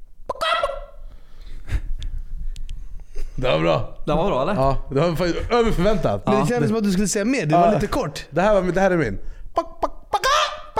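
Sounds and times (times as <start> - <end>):
person imitating a hen clucking: 0.3 - 1.0, 9.6 - 10.7
speech: 3.4 - 9.7.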